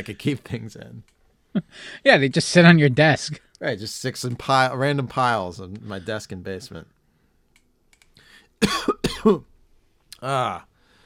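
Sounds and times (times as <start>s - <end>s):
speech: 0.0s - 7.0s, 8.6s - 9.5s, 10.2s - 10.7s
person coughing after swallowing saliva wrong: 8.6s - 9.5s.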